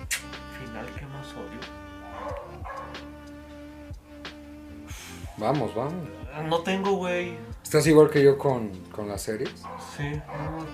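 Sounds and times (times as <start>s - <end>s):
speech: 0.8s - 3.2s, 5.4s - 10.7s
dogs barking: 2.0s - 3.1s, 9.6s - 10.7s.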